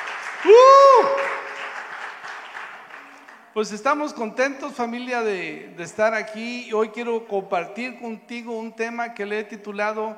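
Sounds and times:
large church audience applauding: 0.0 - 3.6
speech: 3.6 - 10.1.

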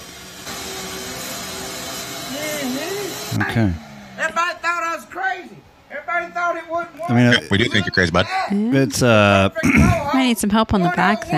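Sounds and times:
vacuum sucking up debris with a steady whooshing roar: 0.0 - 4.8
speech: 3.4 - 3.9, 6.2 - 11.3
laughter: 7.0 - 10.2.

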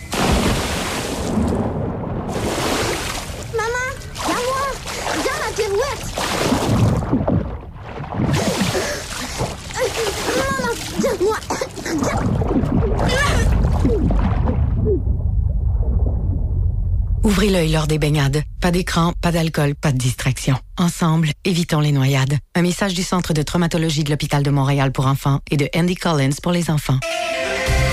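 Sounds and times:
child's cannonball jump splashing into water: 0.0 - 16.3
steady wash of water: 0.0 - 21.1
speech: 17.4 - 27.8.

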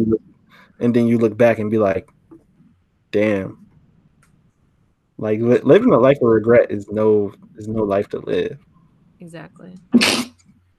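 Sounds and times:
speech: 0.0 - 2.2, 3.1 - 3.6, 5.2 - 8.6, 9.2 - 10.3
forceful sneeze: 9.9 - 10.4.

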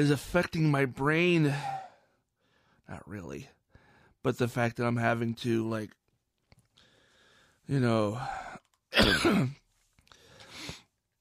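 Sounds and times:
speech: 0.0 - 1.8, 2.9 - 3.6, 4.2 - 6.0, 7.7 - 9.6
person with asthma coughing: 8.9 - 9.6.

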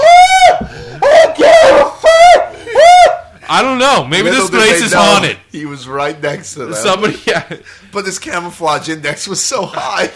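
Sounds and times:
person imitating a man burning in a fire screaming: 0.0 - 3.2
speech: 3.6 - 10.1
laughter: 6.8 - 8.2.

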